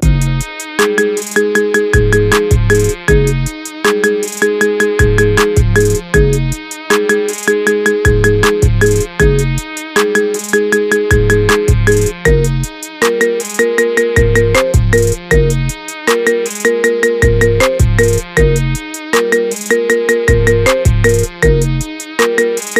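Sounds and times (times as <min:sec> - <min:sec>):
marimba ringtone: 0:00.8 - 0:06.4, 0:07.0 - 0:09.4, 0:10.0 - 0:18.6, 0:19.2 - 0:22.7.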